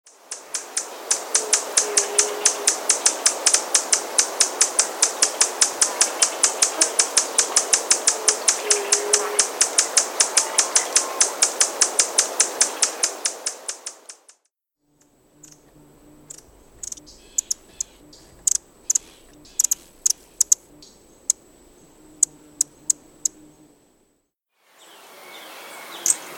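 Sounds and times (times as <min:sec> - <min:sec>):
buff-bellied hummingbird: 0:00.1 - 0:14.3, 0:14.9 - 0:24.1, 0:24.8 - 0:26.3.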